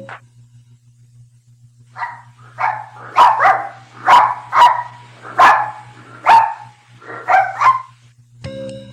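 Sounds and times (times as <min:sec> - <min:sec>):
dog barking: 0:01.9 - 0:08.0.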